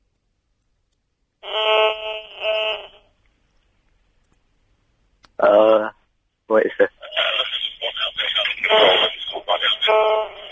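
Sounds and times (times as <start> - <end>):
pulsing electronic buzz of mobile phone radio interference: 1.4 - 3.1, 8.6 - 10.5
man's voice: 7.0 - 10.5.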